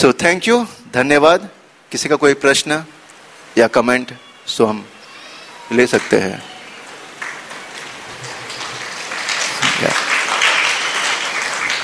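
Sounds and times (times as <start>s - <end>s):
speech: 0.0s - 3.0s, 3.6s - 5.0s, 5.7s - 6.5s
crowd applauding: 5.0s - 11.8s.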